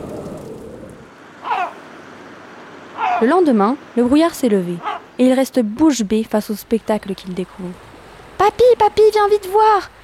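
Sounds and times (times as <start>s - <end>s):
storm rain over the Pacific Ocean in fog: 0.0s - 1.2s
speech: 3.2s - 7.9s, 8.5s - 10.0s.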